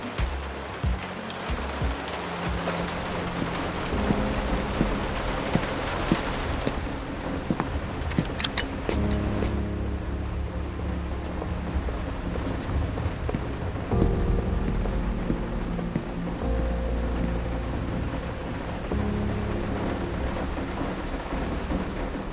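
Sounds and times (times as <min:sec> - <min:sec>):
cold January rain falling: 0:00.0 - 0:22.3
low rumbling swells: 0:02.8 - 0:22.3.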